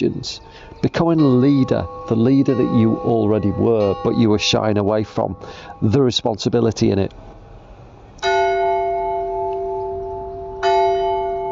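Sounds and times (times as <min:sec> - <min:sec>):
speech: 0:00.0 - 0:07.3
church bell tolling: 0:00.8 - 0:06.2, 0:08.2 - 0:11.5.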